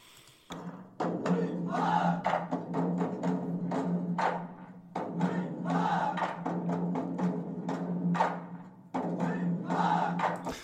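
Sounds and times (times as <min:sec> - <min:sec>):
steady march drum beats: 0:00.0 - 0:10.6
group of men chanting in unison in a military-style march: 0:01.2 - 0:02.5, 0:05.0 - 0:06.7, 0:09.0 - 0:10.5.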